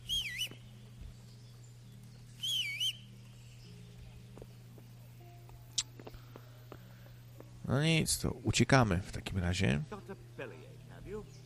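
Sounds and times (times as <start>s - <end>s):
steady low hum: 0.0s - 11.4s
person whistling with a warbling trilling pitch: 0.1s - 0.6s
speech: 7.7s - 10.2s.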